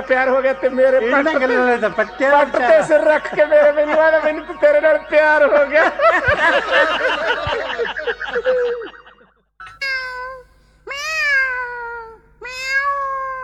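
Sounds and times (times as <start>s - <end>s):
speech: 0.0s - 8.9s
laughter: 0.0s - 9.4s
cat meowing: 9.7s - 13.4s.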